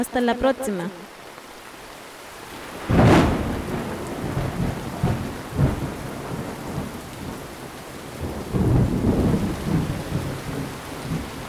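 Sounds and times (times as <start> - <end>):
speech: 0.0 - 1.2
heavy rain pouring: 0.0 - 11.4
thunder crack and rolling rumbles: 2.8 - 7.6, 8.2 - 11.4.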